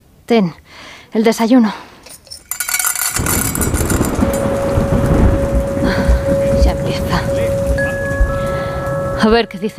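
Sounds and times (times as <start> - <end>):
speech: 0.3 - 1.9, 9.2 - 9.7
deep rumble of thunder: 3.1 - 8.9
heavy rain hissing: 3.3 - 8.9.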